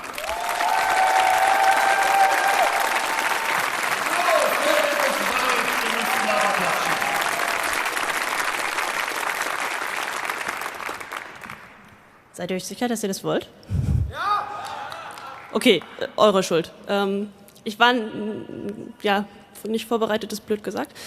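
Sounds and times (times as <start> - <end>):
scattered cheers and whoops from the audience: 0.0 - 8.0, 14.1 - 15.4
loud sustained applause from a large audience welcoming a performer: 0.0 - 11.9, 14.5 - 15.6
speech: 12.4 - 13.8, 15.6 - 21.0.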